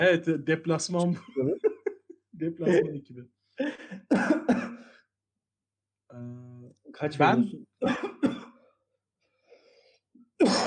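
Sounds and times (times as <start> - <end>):
speech: 0.0 - 1.5, 2.4 - 4.6, 7.0 - 8.1, 10.4 - 10.6
laughter: 1.1 - 2.4
faint breathy sounds: 9.2 - 10.2
person sneezing: 10.4 - 10.6.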